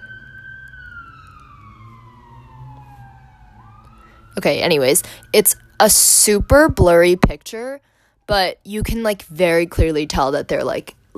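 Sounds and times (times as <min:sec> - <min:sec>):
low rumble of engine and road noise: 0:00.0 - 0:07.7
loud emergency vehicle siren passing: 0:00.0 - 0:08.7
speech: 0:04.4 - 0:11.1.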